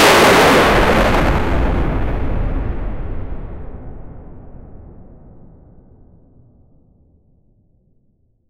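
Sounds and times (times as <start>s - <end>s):
massive landslide: 0.0s - 3.8s.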